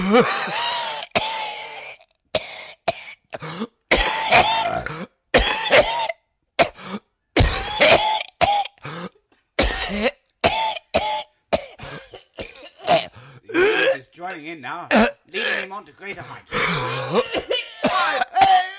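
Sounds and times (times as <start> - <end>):
speech: 0.2 - 0.6, 15.9 - 17.2
prolonged heavy coughing fit with wheezy gasps: 2.3 - 14.4, 14.9 - 18.7.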